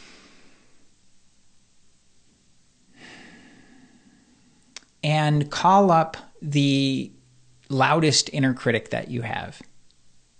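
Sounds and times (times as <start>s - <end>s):
person taking a slow deep breath during a guided exercise: 0.0s - 0.8s, 2.9s - 4.7s
speech: 5.0s - 9.7s.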